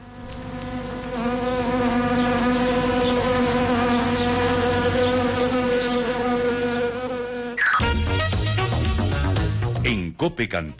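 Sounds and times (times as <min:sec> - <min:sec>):
swarm of wasps buzzing sound effect: 0:00.0 - 0:09.6
speech: 0:10.3 - 0:10.7.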